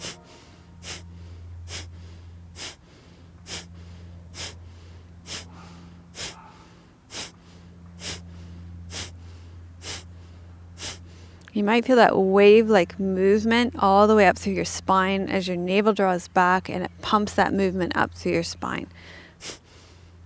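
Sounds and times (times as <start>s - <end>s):
forceful nasal exhalations from yogic breathing: 0.0s - 11.4s, 19.0s - 20.2s
low continuous hum: 0.0s - 20.2s
speech: 11.6s - 19.6s.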